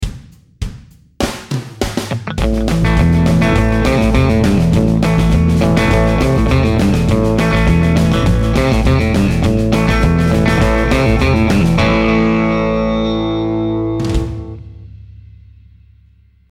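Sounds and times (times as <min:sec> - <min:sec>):
country guitar lick: 0:02.0 - 0:14.6.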